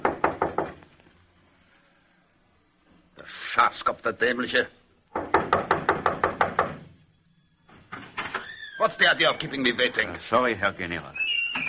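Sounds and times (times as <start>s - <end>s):
knocking on a barber shop's wooden door: 0.0s - 0.8s, 5.1s - 6.9s
speech: 3.6s - 4.8s, 8.8s - 11.3s.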